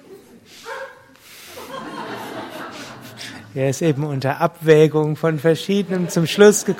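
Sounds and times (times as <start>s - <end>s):
dog barking: 0.6s - 1.1s
laughter: 1.4s - 4.7s, 5.4s - 6.7s
speech: 3.6s - 6.7s.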